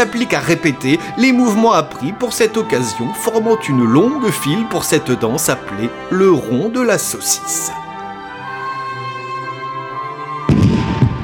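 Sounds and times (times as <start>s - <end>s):
speech: 0.0s - 7.8s
steady sustained musical tones: 0.0s - 11.2s
cannon shot: 10.5s - 11.2s.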